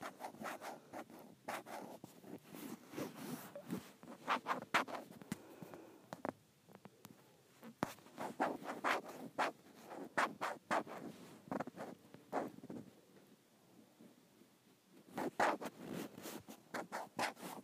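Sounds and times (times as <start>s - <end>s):
dry scratching and rubbing on a tablet case: 0.0s - 5.3s, 7.6s - 12.8s, 15.1s - 17.6s.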